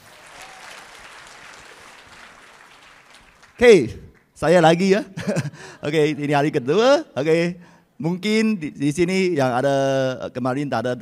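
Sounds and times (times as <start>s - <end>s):
audience clapping: 0.0s - 4.4s
speech: 3.6s - 10.9s
laughter: 4.8s - 7.4s.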